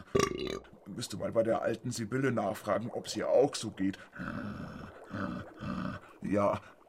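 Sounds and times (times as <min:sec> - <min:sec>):
loud deep guttural burps: 0:00.0 - 0:00.7
speech: 0:00.6 - 0:05.6, 0:06.3 - 0:06.8.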